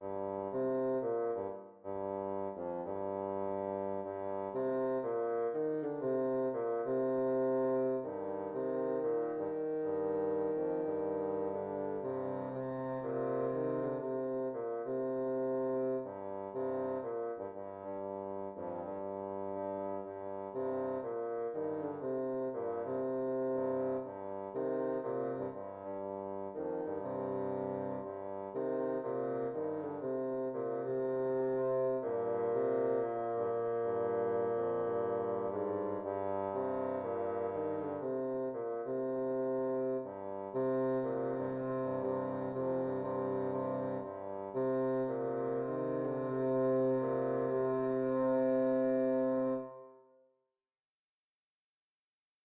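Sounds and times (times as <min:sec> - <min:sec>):
jazzy bassoon duet: 0:00.0 - 0:50.2.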